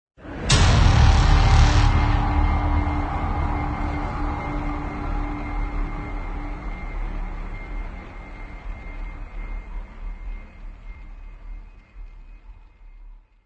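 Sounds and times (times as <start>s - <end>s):
epic trailer intro hit: 0.2s - 9.8s.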